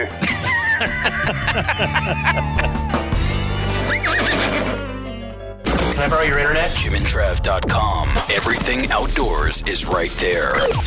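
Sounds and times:
laughter: 0:00.0 - 0:02.9
speech: 0:00.8 - 0:02.9, 0:06.0 - 0:10.8
horse neighing: 0:03.8 - 0:04.9.

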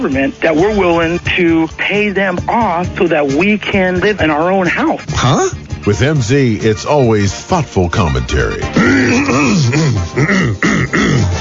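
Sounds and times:
speech: 0:00.0 - 0:11.3
man clearing his throat on air: 0:05.2 - 0:05.6, 0:08.6 - 0:11.3.

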